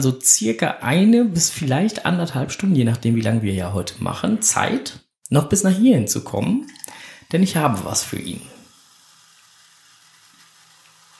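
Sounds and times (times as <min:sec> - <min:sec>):
speech: 0:00.0 - 0:08.6
cola being poured, fizzing: 0:06.6 - 0:11.1.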